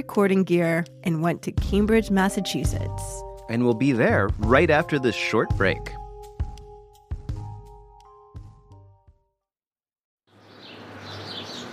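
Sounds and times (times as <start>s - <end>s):
speech: 0.0s - 6.0s
plucked ringing musical notes: 1.7s - 6.1s
birds chirping softly outdoors at Harvard in Cambridge Massachusetts: 10.3s - 11.7s.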